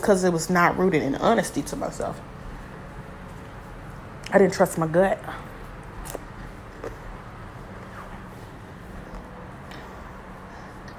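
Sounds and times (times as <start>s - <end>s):
speech: 0.0s - 2.3s, 4.3s - 5.5s
steady low hum: 0.0s - 10.9s
person chewing crisp food like bacon: 5.8s - 7.2s.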